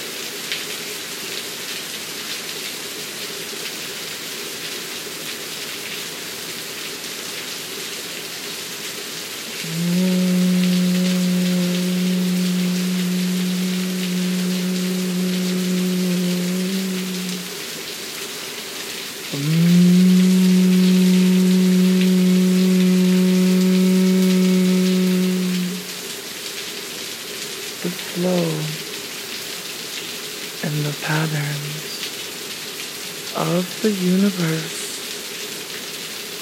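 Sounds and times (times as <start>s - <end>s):
steady rain: 0.0s - 36.4s
low smooth tones: 9.6s - 17.5s, 19.3s - 26.0s
speech: 33.8s - 34.8s.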